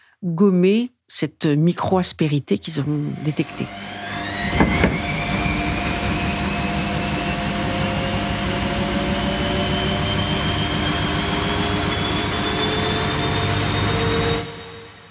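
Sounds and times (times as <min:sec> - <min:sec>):
speech: 0:00.2 - 0:03.9
washing machine factory machinery roaring with high whining tones: 0:03.1 - 0:15.0
brief clunk of factory machinery: 0:04.4 - 0:05.8.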